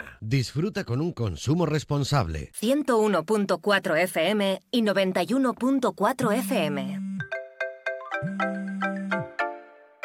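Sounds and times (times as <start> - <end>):
speech: 0.2 - 7.0, 8.2 - 8.6
mobile phone ringtone with bright electronic melody: 6.9 - 10.0.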